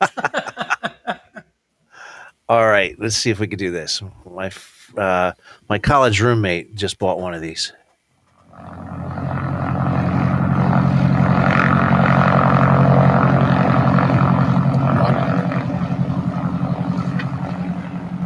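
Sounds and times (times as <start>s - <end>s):
laughter: 0.0s - 1.4s
speech: 2.5s - 7.8s
propeller airplane engine droning: 8.3s - 18.2s.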